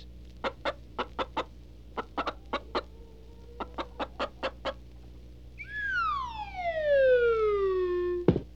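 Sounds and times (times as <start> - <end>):
hen clucking while laying an egg: 0.0 - 5.2
long falling whistle: 5.6 - 8.3.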